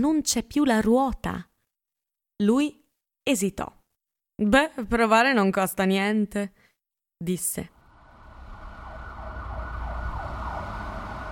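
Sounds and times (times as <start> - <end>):
speech: 0.0 - 1.5, 2.4 - 3.8, 4.4 - 6.6, 7.2 - 7.8
deep rumbling of engines or traffic: 7.9 - 11.3
loud sirens wailing with sweeping overlapping tones: 7.9 - 11.3.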